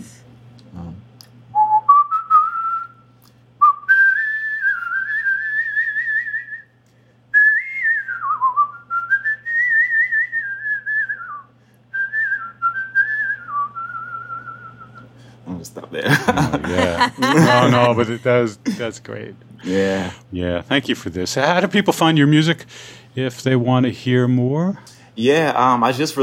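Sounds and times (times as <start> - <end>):
person whistling a tune of the kind played at a wedding: 1.6 - 3.0, 3.6 - 6.7, 7.3 - 15.1
laughter: 16.0 - 18.8
speech: 17.0 - 26.2.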